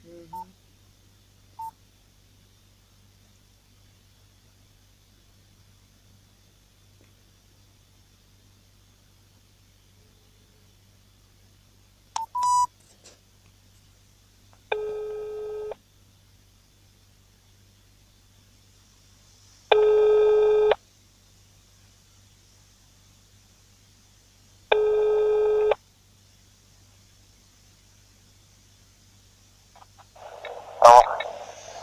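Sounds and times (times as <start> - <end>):
faint steady hum: 0.0 - 31.8
phone keypad tones: 12.2 - 12.7.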